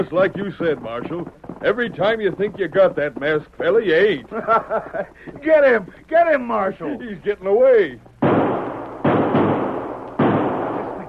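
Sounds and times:
speech: 0.0s - 8.1s
laughter: 4.1s - 5.6s
gunshots fired at a fleeing man: 8.2s - 11.0s.

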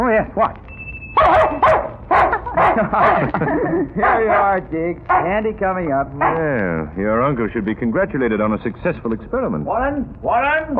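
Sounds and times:
speech: 0.2s - 1.8s, 2.8s - 10.7s
dog barking: 1.2s - 3.4s, 4.0s - 5.4s, 6.2s - 6.5s
laughter: 2.2s - 4.5s.

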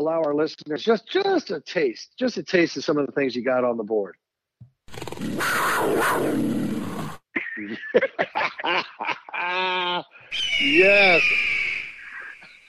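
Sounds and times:
speech: 0.0s - 4.2s, 5.2s - 6.8s, 7.6s - 11.6s
short shrill harmonic animal calls: 4.9s - 7.1s, 10.2s - 12.6s
panther growl sound effect played from a mixing board: 4.9s - 7.2s
laughter: 7.4s - 10.2s.

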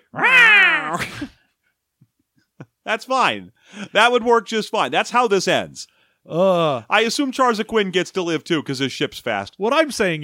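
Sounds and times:
human voice imitating a cat's meow: 0.0s - 1.2s
speech: 0.9s - 1.4s, 2.9s - 10.2s.

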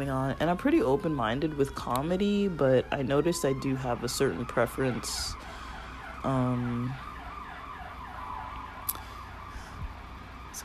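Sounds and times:
speech: 0.0s - 5.5s, 6.2s - 7.1s
ambulance siren passing outside: 0.0s - 10.6s
low traffic hum: 0.0s - 10.6s.

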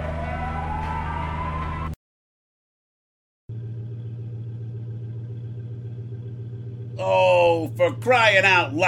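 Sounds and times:
police car siren: 0.0s - 2.0s
vehicle engine hum: 0.0s - 2.0s, 3.5s - 8.8s
speech: 7.0s - 8.8s.

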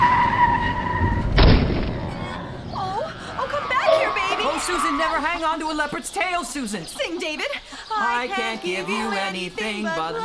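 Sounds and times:
loud crashing burst of noise: 0.0s - 2.6s
car tire screech skidding to avoid a chicken truck: 0.0s - 5.5s
speech: 5.4s - 10.2s.

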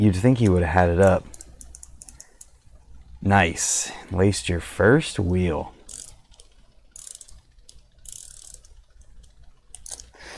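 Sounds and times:
speech: 0.0s - 1.3s, 3.2s - 5.8s
10 mm ratcheting wrench clicking while fidgeted with in hand: 1.0s - 2.7s, 5.8s - 10.1s.

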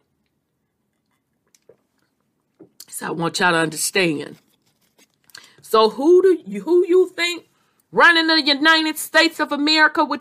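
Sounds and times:
sips of water: 0.0s - 2.9s
soft gulps: 0.0s - 2.9s
small wet mouth clicks: 0.2s - 2.9s
speech: 3.0s - 4.4s, 5.7s - 10.1s.

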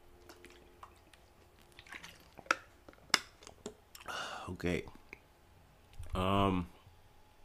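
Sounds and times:
sharp liquid clicks: 0.2s - 4.1s
person drinking water, sipping and swallowing: 0.2s - 4.2s
speech: 4.5s - 5.0s, 6.2s - 6.8s.

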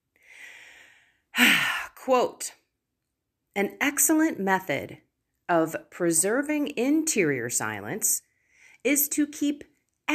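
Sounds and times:
soft drawn-out breath: 0.2s - 2.0s, 8.2s - 8.9s
speech: 2.1s - 2.6s, 3.6s - 10.1s.

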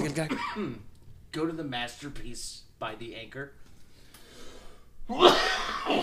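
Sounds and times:
speech: 0.2s - 3.7s, 5.1s - 6.0s
sneeze: 5.1s - 6.0s.

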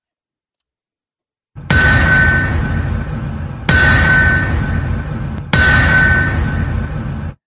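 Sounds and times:
bell struck with a hammer: 1.6s - 7.2s.

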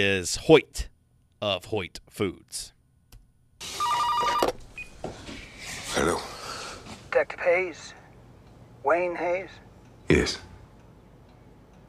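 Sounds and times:
speech: 0.0s - 2.8s, 6.0s - 6.3s, 7.1s - 8.0s, 8.8s - 10.5s
low hum: 0.0s - 11.8s
telephone ringing with a rapid trilling burst: 3.7s - 4.6s.

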